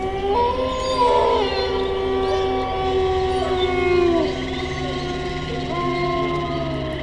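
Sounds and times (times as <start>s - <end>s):
wolf howling: 0.0s - 7.0s.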